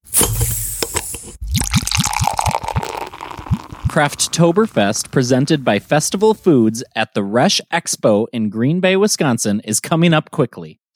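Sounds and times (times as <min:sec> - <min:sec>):
beer foam fizzing: 0:00.1 - 0:06.8
beer glugging and splashing into glasses: 0:01.4 - 0:06.5
speech: 0:04.0 - 0:10.9.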